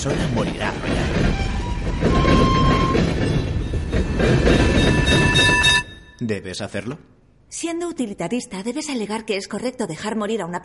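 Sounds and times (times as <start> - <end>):
speech: 0.0 - 2.1, 6.2 - 10.6
out-of-control tram speeding along rails: 0.0 - 6.1
thin metallic squeals of tram on rails: 1.3 - 6.2.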